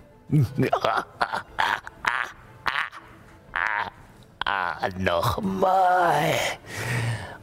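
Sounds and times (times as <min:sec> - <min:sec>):
speech: 0:00.3 - 0:01.4, 0:04.8 - 0:07.0
voice imitating a deep distorted laugh: 0:00.4 - 0:04.8.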